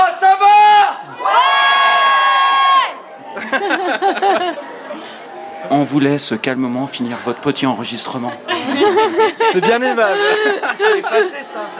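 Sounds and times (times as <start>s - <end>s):
audience shouting a chant in unison: 0.6s - 3.4s
laughter: 3.1s - 5.6s, 7.9s - 11.7s
speech: 5.9s - 11.7s.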